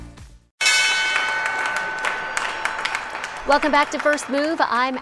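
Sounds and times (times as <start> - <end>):
Wall Street stock exchange opening bell ringing: 0.6 - 4.5
crowd applauding: 1.1 - 4.9
speech: 3.5 - 4.9.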